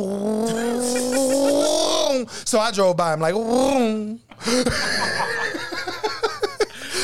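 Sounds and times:
voice imitating an airplane engine: 0:00.0 - 0:02.2
laughter: 0:00.5 - 0:02.2, 0:04.4 - 0:07.0
speech: 0:02.5 - 0:05.4.

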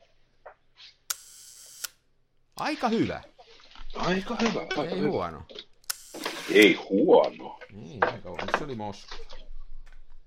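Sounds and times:
speech: 0:02.6 - 0:03.3, 0:03.9 - 0:09.4
small camera mechanical clicks: 0:05.8 - 0:06.7
camera focal-plane shutter snap for a long exposure: 0:05.9 - 0:06.8.

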